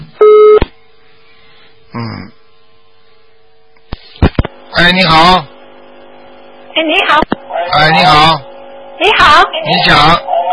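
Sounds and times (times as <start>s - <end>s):
telephone line busy tone after a dropped call: 0.2s - 0.6s
speech: 4.9s - 5.5s, 6.8s - 10.3s.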